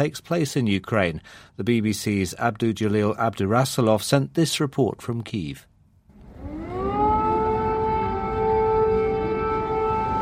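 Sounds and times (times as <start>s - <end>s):
speech: 0.0s - 5.7s
loud air raid siren wailing: 6.1s - 10.1s.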